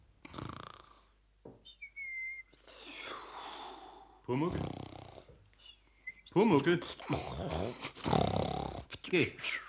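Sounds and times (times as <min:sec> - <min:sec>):
person faking heavy snoring: 0:00.2 - 0:01.1, 0:04.5 - 0:05.3, 0:07.1 - 0:08.9
speech: 0:04.3 - 0:04.8, 0:06.4 - 0:08.2, 0:09.1 - 0:09.6.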